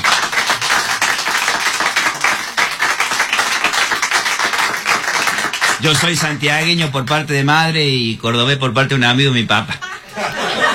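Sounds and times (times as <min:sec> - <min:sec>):
audience applause: 0:00.0 - 0:06.3
speech: 0:05.8 - 0:10.6
laughter: 0:09.7 - 0:10.7.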